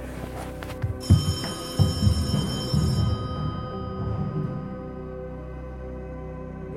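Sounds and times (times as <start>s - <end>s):
telephone bell ringing: 1.0s - 4.9s.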